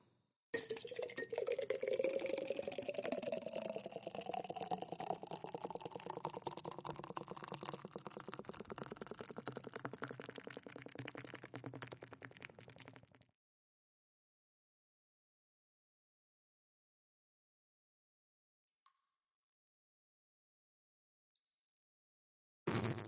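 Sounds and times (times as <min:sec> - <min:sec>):
dark beer pouring into a cup: 0:00.6 - 0:13.2.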